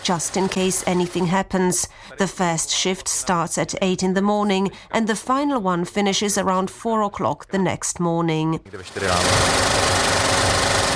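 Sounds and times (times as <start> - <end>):
70mm film projector running a film print: 0.0 - 1.2, 8.8 - 10.9
speech: 0.0 - 10.1.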